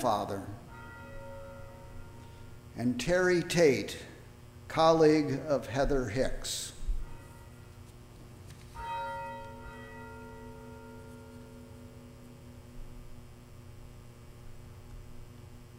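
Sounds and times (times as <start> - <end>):
speech: 0.0 - 0.6, 2.8 - 4.1, 4.7 - 6.7
steady low electrical hum: 0.0 - 15.7
single bell strike ringing: 0.6 - 2.6, 8.8 - 12.6.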